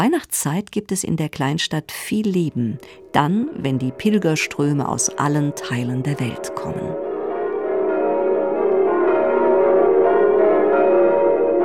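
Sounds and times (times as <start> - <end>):
speech: 0.0 - 7.0
church bells of the Church of the Nativity in Bethlehem ringing: 2.5 - 11.6.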